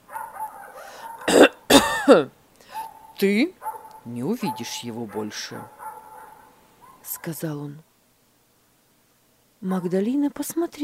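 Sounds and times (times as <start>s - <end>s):
man clearing throat with coughing bursts: 1.3s - 2.3s
speech: 2.1s - 2.4s, 3.2s - 5.8s, 7.1s - 7.9s, 9.6s - 10.8s.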